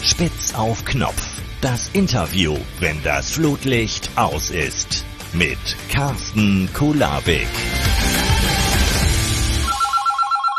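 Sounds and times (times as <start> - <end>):
dense loud noisy wash of music or ambience: 0.0 - 9.7
speech: 0.2 - 7.7
telephone ringing with a bright warbling electronic trill: 9.6 - 10.5.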